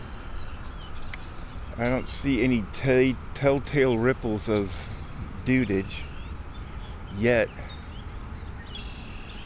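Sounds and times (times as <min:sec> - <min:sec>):
low outdoor rumble: 0:00.0 - 0:09.4
red-winged blackbirds calling: 0:00.0 - 0:09.4
speech: 0:01.8 - 0:06.1, 0:07.1 - 0:07.8.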